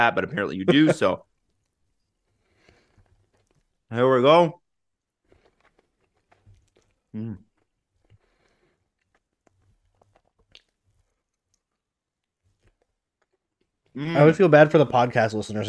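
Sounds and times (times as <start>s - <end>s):
speech: 0.0s - 1.3s, 3.9s - 4.6s, 7.1s - 7.4s, 14.0s - 15.6s
chewing food: 1.4s - 3.9s, 4.9s - 14.0s
wet crunchy mouth sounds: 2.2s - 3.8s, 5.2s - 14.1s.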